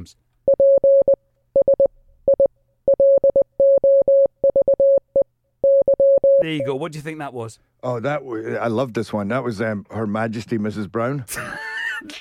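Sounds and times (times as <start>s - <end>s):
speech: 0.0s - 0.2s, 6.4s - 12.1s
electronic tone keyed in Morse code: 0.5s - 6.8s
laughter: 11.3s - 12.1s.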